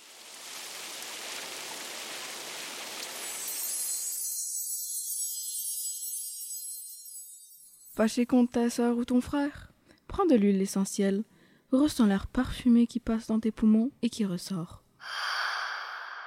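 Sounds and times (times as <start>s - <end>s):
rain falling: 0.0s - 4.2s
speech: 8.0s - 14.8s.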